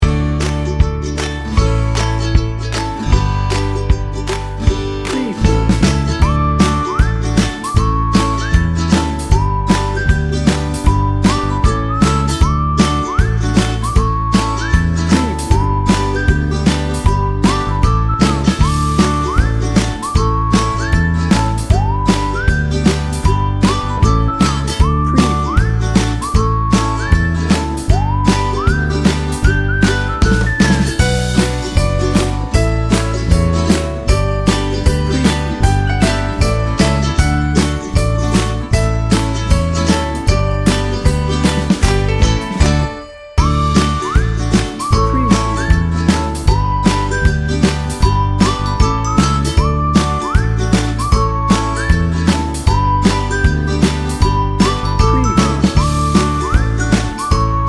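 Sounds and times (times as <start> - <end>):
ukulele: 0.0 - 57.6
person whistling: 6.2 - 31.2, 43.4 - 57.6.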